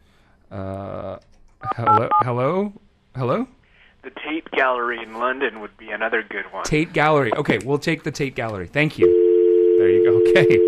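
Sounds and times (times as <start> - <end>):
speech: 0.5 - 1.1, 1.8 - 3.5, 4.3 - 9.2, 9.8 - 10.6
buzzy telephone line tone as a call connects: 9.0 - 10.6.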